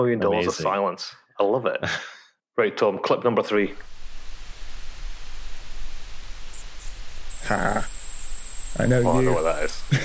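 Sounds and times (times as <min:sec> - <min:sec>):
speech: 0:00.0 - 0:04.0, 0:07.5 - 0:07.8, 0:08.8 - 0:10.0
underwater hiss: 0:03.7 - 0:10.0
deep-sea submersible underwater acoustic modem signal pings: 0:06.6 - 0:10.0.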